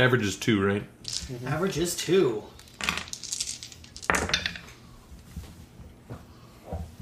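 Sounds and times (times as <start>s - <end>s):
speech: 0.0s - 3.0s
dice rolled for a perception check clattering across a hard surface: 1.0s - 4.7s.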